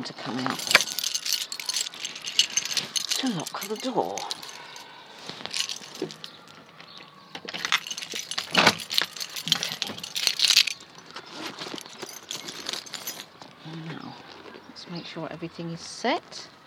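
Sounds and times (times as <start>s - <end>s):
speech: 0.0s - 0.9s, 3.2s - 4.4s, 15.1s - 16.6s
keys jangling while someone rummages for them: 0.4s - 6.6s, 7.5s - 13.3s.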